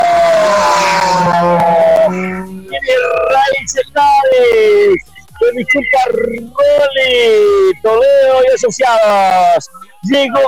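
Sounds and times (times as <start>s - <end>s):
rally car engine roaring past at high speed on a special stage: 0.0s - 4.2s
speech: 5.6s - 10.4s.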